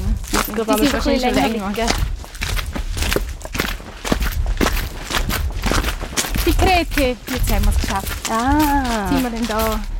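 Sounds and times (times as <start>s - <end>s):
footsteps of people walking along a mountain trail: 0.0s - 9.9s
speech: 0.5s - 2.2s, 6.6s - 9.9s.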